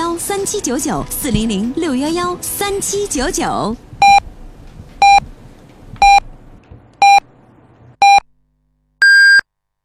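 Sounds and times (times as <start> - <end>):
speech: 0.3 - 3.9
radio hourly time signal beeps: 4.0 - 4.2, 5.0 - 5.2, 9.0 - 9.4.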